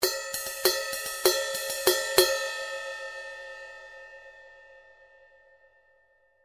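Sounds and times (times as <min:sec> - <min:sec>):
crash ride cymbal: 0:00.0 - 0:03.6.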